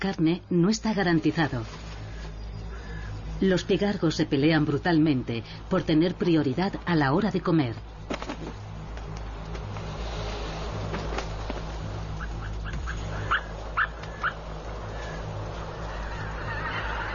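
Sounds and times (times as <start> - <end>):
speech: 0.0 - 1.8, 3.4 - 8.6
low hum: 0.0 - 17.1
geese honking at night over receding floodwater: 12.1 - 17.1.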